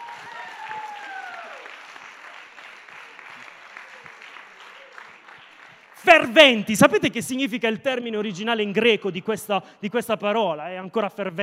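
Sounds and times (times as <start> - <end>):
audience at a Sunday gathering applauding: 0.0 - 6.3
speech: 6.0 - 11.4.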